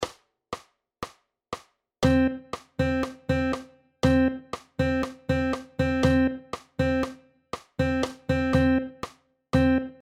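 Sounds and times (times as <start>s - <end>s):
melodic rhythm: 2.0s - 10.0s.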